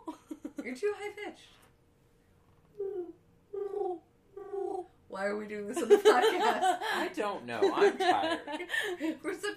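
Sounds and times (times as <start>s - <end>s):
speech: 0.8s - 1.6s, 5.2s - 9.5s
person imitating pigeon cooing: 2.8s - 4.9s
laughter: 5.8s - 9.2s.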